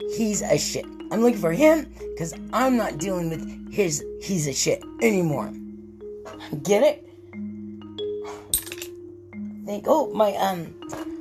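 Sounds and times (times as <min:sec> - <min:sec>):
speech: 0:00.0 - 0:05.6, 0:06.4 - 0:07.1, 0:09.7 - 0:11.1
glass shattering: 0:08.5 - 0:09.0.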